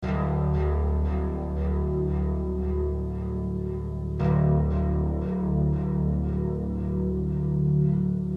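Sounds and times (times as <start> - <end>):
ambient bass tone in D: 0.0 - 8.3.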